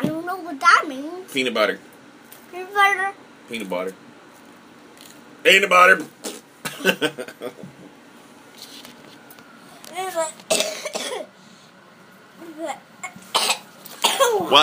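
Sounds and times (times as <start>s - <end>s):
speech: 0.4s - 1.9s, 2.5s - 4.1s, 5.4s - 6.2s, 6.8s - 7.8s, 10.0s - 11.4s, 12.4s - 13.5s, 14.2s - 14.6s
harsh coughing fit: 6.2s - 7.6s, 10.5s - 11.3s, 13.0s - 14.5s.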